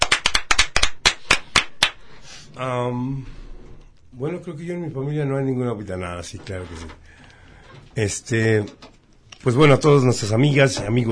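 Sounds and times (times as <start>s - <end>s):
applause: 0.0s - 2.0s
speech: 2.6s - 3.4s, 4.1s - 7.2s, 8.0s - 11.1s.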